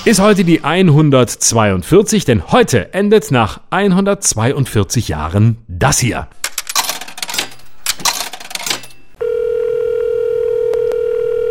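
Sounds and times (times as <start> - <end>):
speech: 0.0 - 6.4
clattering rattling mechanical noise of coin-operated public payphone: 6.4 - 9.2
loud steady public payphone dial tone: 9.2 - 11.4.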